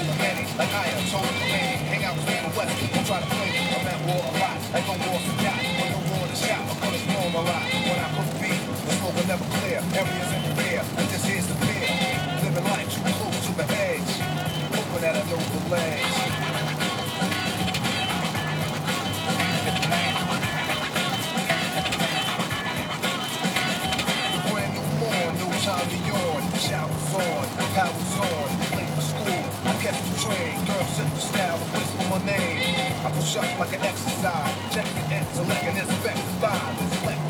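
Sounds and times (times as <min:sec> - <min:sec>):
heavy rain: 0:00.0 - 0:37.2
vehicles hissing past on wet road: 0:00.0 - 0:37.2
speech: 0:00.6 - 0:11.5, 0:15.0 - 0:16.6, 0:29.8 - 0:37.0.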